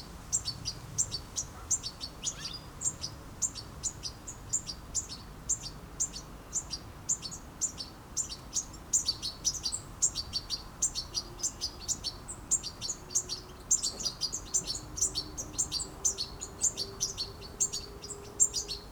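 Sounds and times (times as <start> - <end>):
background hiss: 0.0 - 18.9
European goldfinch Carduelis carduelis chirping: 0.3 - 18.9.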